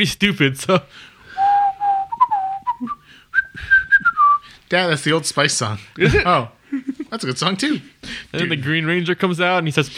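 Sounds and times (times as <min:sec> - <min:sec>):
speech: 0:00.0 - 0:01.1, 0:04.7 - 0:09.9
person whistling a short melodic tune: 0:01.3 - 0:04.5.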